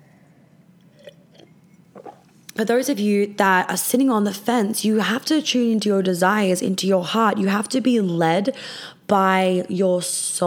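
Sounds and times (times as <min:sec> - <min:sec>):
faint room hiss: 0:00.0 - 0:10.4
person sipping a drink: 0:00.8 - 0:02.6
person gulping a drink: 0:00.9 - 0:02.4
speech: 0:02.6 - 0:10.4.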